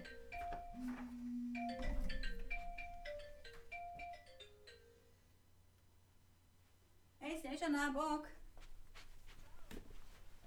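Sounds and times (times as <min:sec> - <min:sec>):
mobile phone ringing with a melodic electronic tune: 0:00.0 - 0:05.0
speech: 0:07.6 - 0:08.4.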